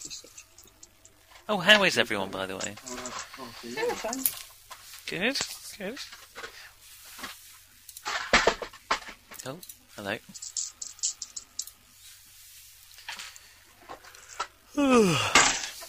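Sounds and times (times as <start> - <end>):
speech: 1.5 - 4.5, 5.1 - 6.2, 9.4 - 10.6, 14.8 - 15.5
rummaging through a tin for six-sided dice: 10.3 - 11.7.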